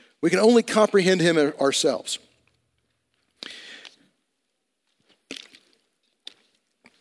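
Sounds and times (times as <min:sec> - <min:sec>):
speech: 0:00.2 - 0:02.3
person drinking water: 0:03.2 - 0:04.2, 0:04.9 - 0:06.9
gulping and clicking mouth sounds: 0:05.3 - 0:06.5.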